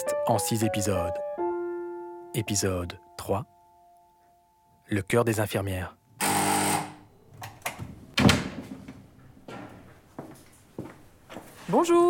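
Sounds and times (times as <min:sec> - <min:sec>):
speech: 0:00.3 - 0:01.3, 0:02.3 - 0:03.5, 0:04.9 - 0:06.0, 0:11.7 - 0:12.0
loud harsh doorbell buzzing: 0:06.2 - 0:07.1
scattered knocks and shuffling: 0:07.3 - 0:11.8
door clattering open with a sharp bang: 0:07.4 - 0:09.7.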